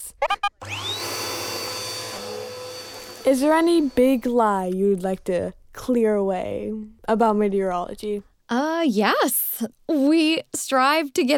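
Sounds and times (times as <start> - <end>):
vacuum cleaner switching on and running: 0.6 - 4.7
speech: 3.3 - 11.3.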